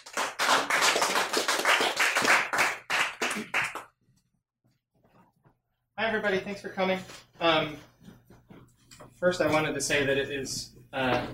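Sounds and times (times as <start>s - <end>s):
audience applause: 0.0s - 3.9s
speech: 6.0s - 7.9s, 9.2s - 11.3s.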